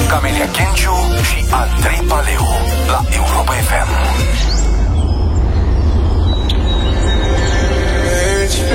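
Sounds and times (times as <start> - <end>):
speech: 0.1 - 4.7
scattered bird chirps and short tweets: 2.0 - 8.6.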